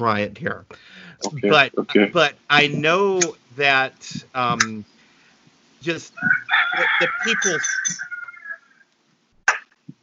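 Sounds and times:
speech: 0:00.0 - 0:04.9, 0:05.8 - 0:08.1
rooster crowing: 0:06.1 - 0:08.9.

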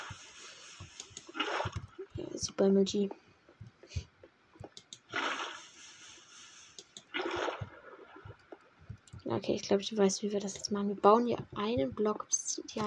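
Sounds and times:
speech: 0:02.5 - 0:03.2, 0:09.4 - 0:12.8
video game water being poured out: 0:05.0 - 0:08.5.

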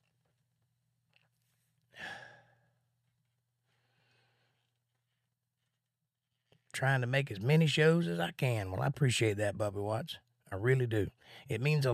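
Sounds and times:
close-miked heavily compressed breathing: 0:01.9 - 0:02.8, 0:03.6 - 0:05.3, 0:11.2 - 0:11.5
speech: 0:06.8 - 0:11.9.

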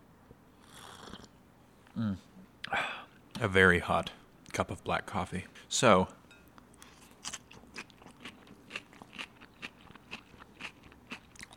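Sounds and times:
speech: 0:02.0 - 0:02.8, 0:03.4 - 0:06.2
salad being chewed: 0:06.4 - 0:11.5.

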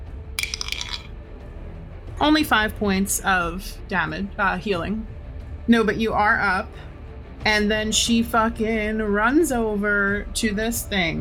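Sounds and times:
dice clattering: 0:00.4 - 0:01.1
speech: 0:02.2 - 0:11.2.

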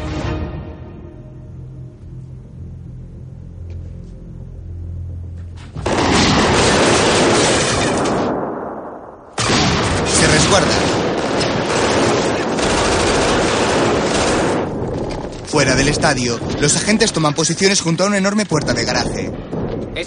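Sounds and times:
gunfire bursts in a crossfire shootout: 0:05.8 - 0:08.6, 0:09.4 - 0:15.0
speech: 0:15.8 - 0:20.0.

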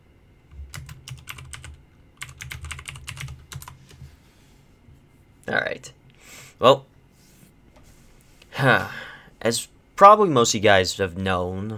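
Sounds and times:
low hum: 0:00.0 - 0:11.7
rapid typing on a computer keyboard: 0:00.6 - 0:03.8
speech: 0:05.5 - 0:06.0, 0:06.6 - 0:06.9, 0:08.6 - 0:11.7.

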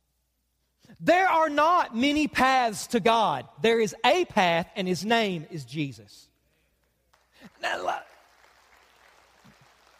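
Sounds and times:
speech: 0:00.9 - 0:06.3, 0:07.4 - 0:08.1
crowd applauding: 0:07.0 - 0:09.9.

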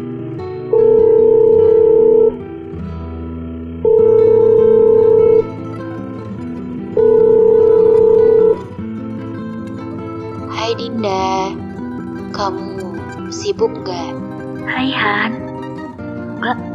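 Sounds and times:
soft music: 0:00.0 - 0:16.7
telephone ringback tone while placing a call: 0:00.7 - 0:02.4, 0:03.8 - 0:05.5, 0:07.0 - 0:08.6
speech: 0:13.3 - 0:15.4, 0:16.4 - 0:16.7.

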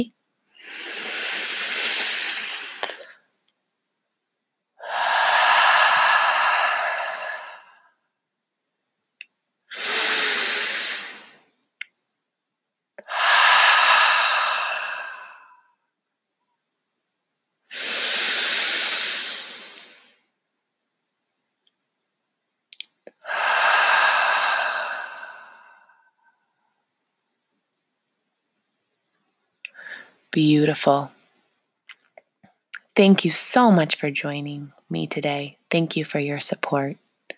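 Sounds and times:
speech: 0:00.0 - 0:00.8, 0:30.4 - 0:31.2, 0:33.0 - 0:37.0
deep slow breaths inhaling and exhaling: 0:00.5 - 0:03.2, 0:04.8 - 0:08.1, 0:09.7 - 0:11.6, 0:13.0 - 0:15.8, 0:17.7 - 0:20.4, 0:23.1 - 0:26.8, 0:29.6 - 0:30.3.

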